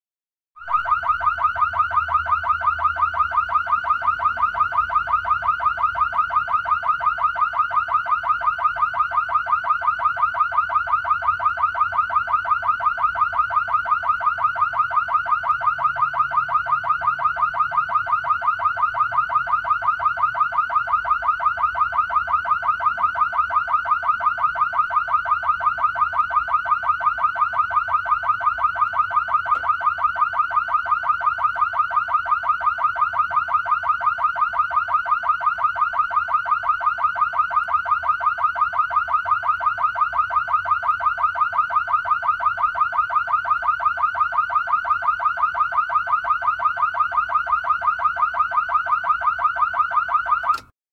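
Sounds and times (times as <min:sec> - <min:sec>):
car alarm fast oscillations: 0:00.6 - 0:50.7.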